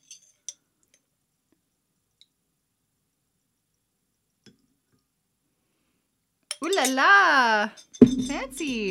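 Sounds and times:
clinks and taps against cocktail glass as maraschino cherries and juice are added: 6.5 - 7.1, 7.7 - 8.8
speech: 6.7 - 8.8.

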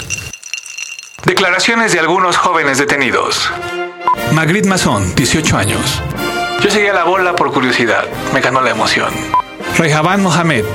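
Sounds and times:
glasses of absinthe with mineral water clinking in a toast: 0.0 - 1.3
speech: 1.2 - 10.7.

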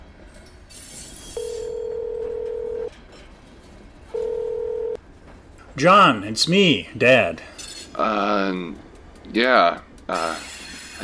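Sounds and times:
telephone dialing electronic tones: 1.7 - 2.9, 4.1 - 5.0
speech: 5.8 - 11.0.

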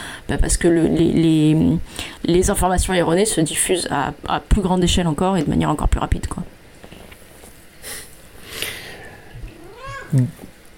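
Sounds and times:
speech: 0.3 - 6.6, 10.1 - 10.5
domestic cat meowing: 9.5 - 10.3.

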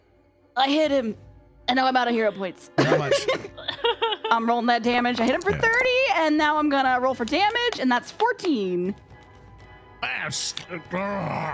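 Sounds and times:
speech: 0.6 - 9.1, 10.0 - 11.5
laughter: 2.8 - 4.6
person voicing a monster's guttural growl: 11.0 - 11.5.

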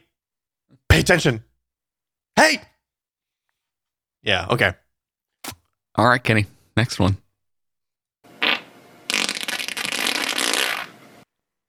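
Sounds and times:
speech: 1.0 - 1.5, 2.4 - 2.7, 4.2 - 4.8, 5.4 - 7.2
long sputtering human fart: 8.4 - 11.0.

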